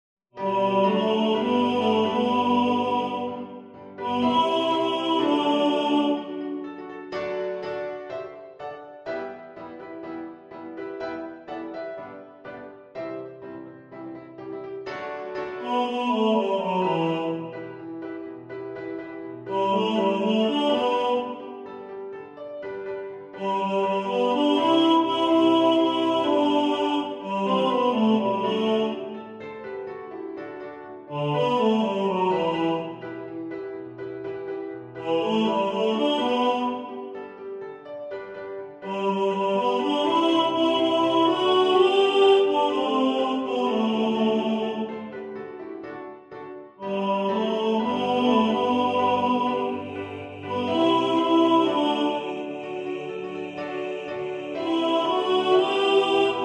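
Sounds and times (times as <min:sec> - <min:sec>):
piano: 0:00.3 - 0:56.4
tenor singing in the foreground: 0:00.4 - 0:08.4, 0:15.0 - 0:18.1, 0:19.4 - 0:21.9, 0:23.3 - 0:29.7, 0:31.1 - 0:33.5, 0:34.9 - 0:37.4, 0:38.8 - 0:45.3, 0:46.8 - 0:56.4.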